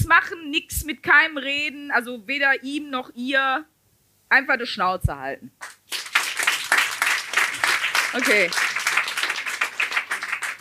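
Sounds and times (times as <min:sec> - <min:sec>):
speech: 0:00.1 - 0:03.7, 0:04.3 - 0:06.0, 0:08.1 - 0:08.8
live audience applause: 0:05.6 - 0:10.5.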